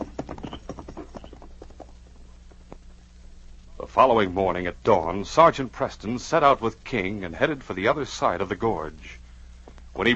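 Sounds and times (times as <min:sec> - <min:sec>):
horses' hooves clip-clopping as riders set off toward a cave: 0:00.0 - 0:03.0
low steady hum: 0:00.0 - 0:10.1
speech: 0:04.0 - 0:09.2, 0:10.0 - 0:10.1.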